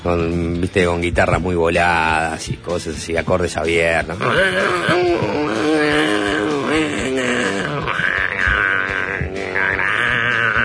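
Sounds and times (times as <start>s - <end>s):
speech: 0.0s - 6.2s
dense wash of distorted noise: 2.4s - 10.6s
baby crying loudly: 4.2s - 10.6s.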